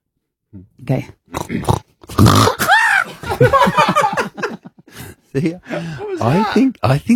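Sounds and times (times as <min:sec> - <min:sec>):
speech: 0:00.5 - 0:02.7, 0:05.3 - 0:07.1
person imitating a pig stubbing its toe: 0:01.3 - 0:03.1
laughter: 0:02.8 - 0:06.5.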